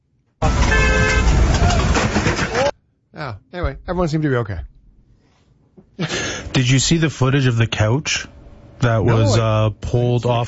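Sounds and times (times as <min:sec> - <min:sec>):
car horn honking at a pedestrian: 0:00.4 - 0:01.5
roaring road and wind noise on a windy day: 0:00.4 - 0:02.6
speech: 0:03.2 - 0:04.8, 0:06.0 - 0:10.4.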